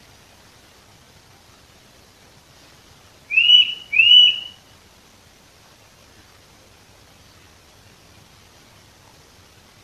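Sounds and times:
Eurasian nuthatch giving loud piping whistles: 3.3 - 4.6.

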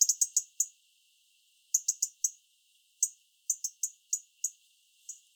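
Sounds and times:
European robin Erithacus rubecula giving tick calls: 0.0 - 0.7, 1.7 - 2.4, 3.0 - 5.2.

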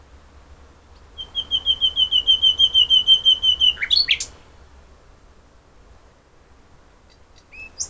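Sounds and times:
common nightingale Luscinia megarhynchos song: 0.9 - 4.6, 7.0 - 7.8.

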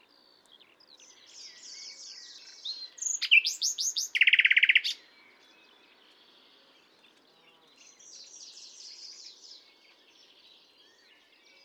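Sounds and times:
common nightingale Luscinia megarhynchos singing: 1.1 - 5.0.

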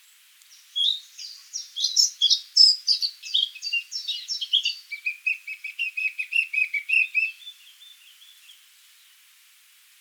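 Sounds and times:
Eurasian blackcap Sylvia atricapilla singing: 0.8 - 7.9.

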